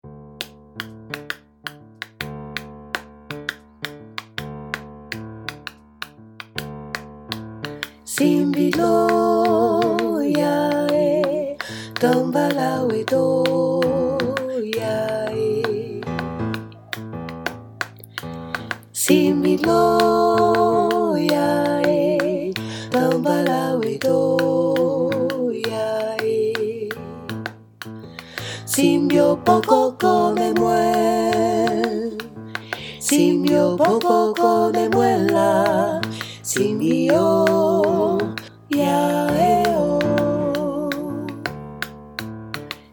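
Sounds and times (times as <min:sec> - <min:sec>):
full ensemble of singers: 0:08.1 - 0:16.2, 0:19.0 - 0:26.9, 0:28.7 - 0:32.2, 0:32.8 - 0:41.3.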